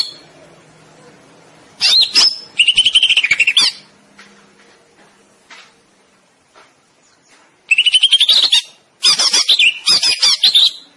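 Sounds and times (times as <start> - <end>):
greater green leafbird song with chattering trill and squeaky phrases: 0.0 - 0.4, 1.8 - 3.9, 7.0 - 10.9
faint scattered sounds: 0.0 - 10.9.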